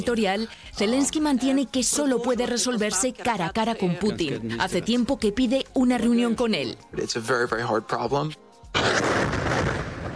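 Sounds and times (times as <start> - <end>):
speech: 0.0 - 9.4
loud explosion in war footage: 8.8 - 10.1.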